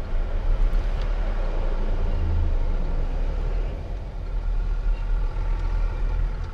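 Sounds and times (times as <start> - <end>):
car engine rumbling down parking garage ramps: 0.0 - 6.5
tire and road noise on parking garage ramps: 0.0 - 6.5.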